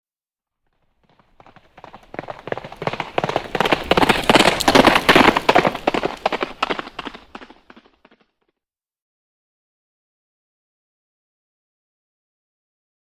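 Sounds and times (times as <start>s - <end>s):
horse galloping: 0.9s - 8.4s.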